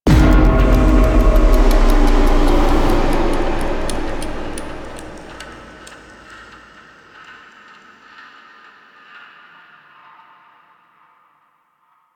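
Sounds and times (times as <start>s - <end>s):
ambience: 0.1s - 6.8s.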